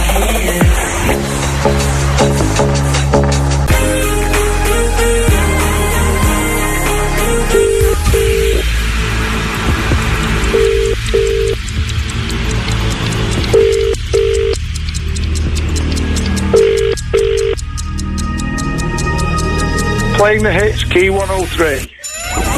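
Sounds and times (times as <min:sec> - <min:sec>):
steady rhythmic music bed: 0:00.0 - 0:22.1
telephone ringing in double bursts: 0:07.5 - 0:08.6, 0:10.6 - 0:11.6, 0:13.6 - 0:14.6, 0:16.6 - 0:17.6
speech: 0:20.3 - 0:22.0.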